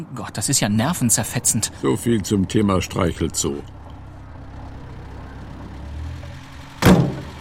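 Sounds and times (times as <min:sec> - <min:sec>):
speech: 0:00.0 - 0:03.8
police car engines pulling up and idling: 0:00.2 - 0:07.3
heavy car door thumping shut: 0:06.8 - 0:07.3.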